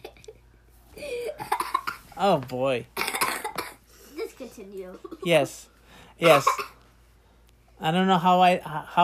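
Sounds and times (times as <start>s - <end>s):
person coughing: 1.1s - 2.0s, 3.0s - 3.8s, 6.2s - 6.8s
speech: 2.2s - 3.0s, 4.6s - 6.7s, 7.8s - 9.0s.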